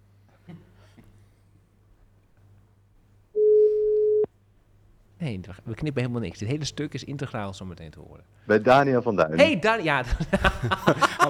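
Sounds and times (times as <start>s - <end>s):
telephone tone while a call is redialed: 3.4s - 4.3s
speech: 5.2s - 11.2s
laughter: 9.4s - 11.2s.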